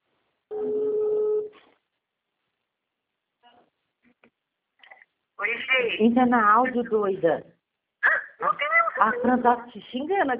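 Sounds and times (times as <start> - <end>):
telephone dialing a call: 0.5 - 1.6
speech: 5.4 - 7.5, 9.0 - 10.3.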